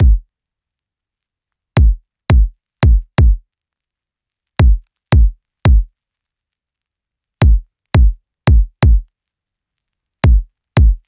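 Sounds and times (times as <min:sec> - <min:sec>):
pop kick drum loop at 85 BPM: 0:00.0 - 0:00.3, 0:01.8 - 0:03.4, 0:04.6 - 0:05.9, 0:07.4 - 0:09.1, 0:10.2 - 0:11.0.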